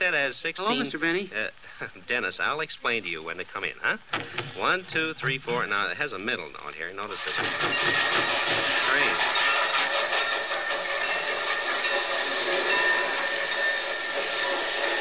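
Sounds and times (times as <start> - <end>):
faint voices: 0.0 - 7.4
speech: 0.0 - 9.5
train passing with mechanical roar: 4.4 - 14.9.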